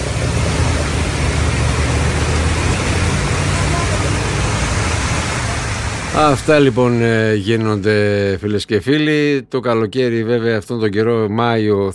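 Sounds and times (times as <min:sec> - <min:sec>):
cars driving through water on a flooded road: 0:00.0 - 0:09.2
heavy rain: 0:00.0 - 0:09.5
speech: 0:06.2 - 0:11.9.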